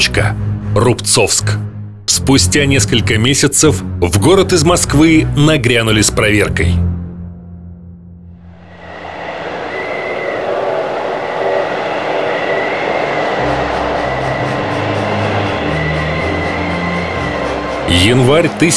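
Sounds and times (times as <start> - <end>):
speech: 0.2 - 7.0, 17.9 - 18.7
government train crawling slowly across snowy steppe in strong blizzard in Altai: 8.5 - 18.7.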